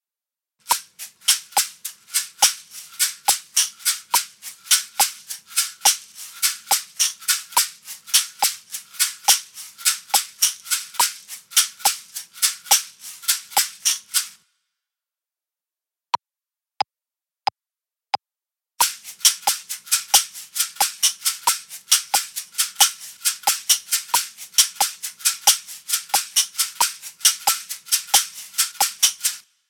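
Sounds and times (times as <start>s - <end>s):
two different caxixi shakers: 0.6s - 14.4s, 18.8s - 29.5s.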